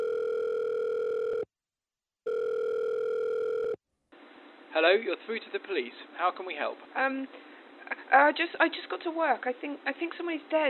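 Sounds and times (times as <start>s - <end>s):
mobile phone ringback tone through an earpiece: 0.0s - 1.5s, 2.3s - 3.8s
speech: 4.8s - 10.6s.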